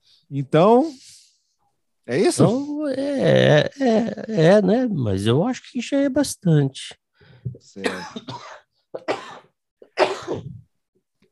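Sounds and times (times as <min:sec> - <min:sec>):
speech: 0:00.3 - 0:01.1, 0:02.1 - 0:09.4
person coughing: 0:07.8 - 0:10.7.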